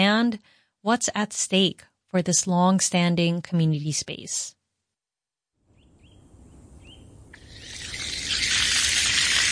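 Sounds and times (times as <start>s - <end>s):
speech: 0.0s - 4.6s
short bird chirps in a community garden: 5.7s - 8.1s
high insect buzz on a hot summer afternoon: 7.3s - 9.5s.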